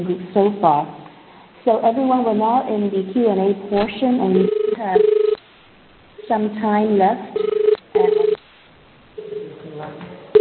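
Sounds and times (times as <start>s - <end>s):
speech: 0.0s - 1.0s, 1.6s - 5.2s, 6.3s - 7.5s
telephone ringing in warbling bursts: 4.4s - 5.4s, 7.4s - 8.4s, 9.2s - 9.6s.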